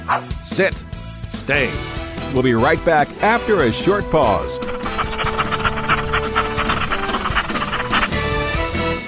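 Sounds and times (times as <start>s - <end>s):
speech: 0.1s - 5.4s
dog panting: 3.8s - 8.9s.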